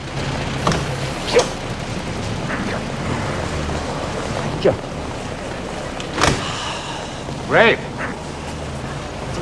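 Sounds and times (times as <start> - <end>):
steady low hum: 0.0 - 9.4
car door unlatching and swinging open: 0.6 - 1.6
speech: 1.3 - 1.6, 4.6 - 4.9, 7.5 - 7.8.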